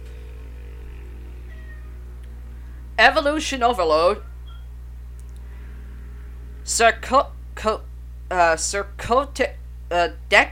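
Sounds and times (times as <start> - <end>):
steady low hum: 0.0 - 10.4
pet cat meowing: 1.4 - 2.0
speech: 3.0 - 4.3, 6.7 - 10.4.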